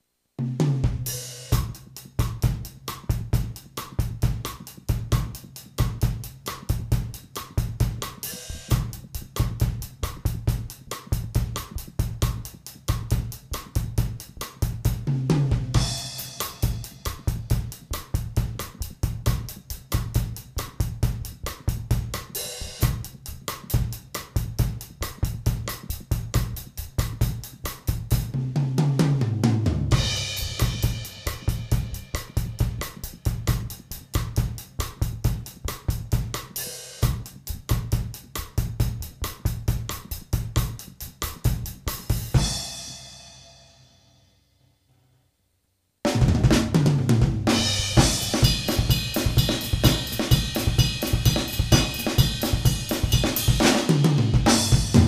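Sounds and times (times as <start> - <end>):
drum playing bossa nova and samba-style rhythms: 0.4 - 43.2, 46.1 - 55.0.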